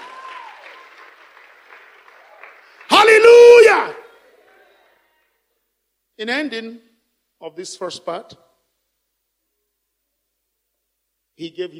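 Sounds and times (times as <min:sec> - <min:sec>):
audience applauding: 0:00.0 - 0:03.4
speech: 0:06.2 - 0:08.5, 0:11.4 - 0:11.7.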